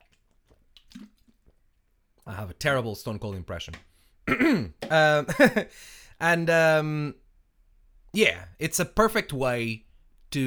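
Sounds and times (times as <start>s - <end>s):
wet swallowing and gulps of water: 0.0s - 1.8s
person sipping and slurping water: 0.0s - 2.3s
speech: 2.3s - 7.2s, 8.1s - 10.4s.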